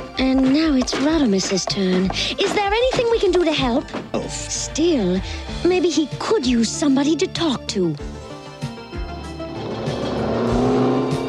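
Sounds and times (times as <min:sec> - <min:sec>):
speech: 0:00.2 - 0:08.2
car engine roaring and revving as the car races past: 0:09.0 - 0:11.2
car tires squealing: 0:09.2 - 0:11.2.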